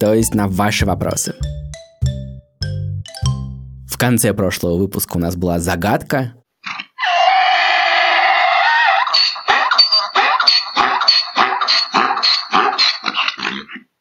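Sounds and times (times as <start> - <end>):
speech: 0.0 - 1.4, 4.0 - 6.4
mule braying: 6.7 - 13.9.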